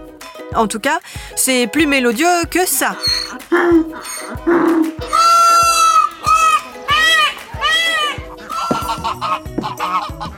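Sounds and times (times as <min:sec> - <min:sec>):
speech: 0:00.5 - 0:05.3
donkey braying: 0:02.7 - 0:10.3
goose honking: 0:02.8 - 0:10.3
peacock calling: 0:02.9 - 0:10.3.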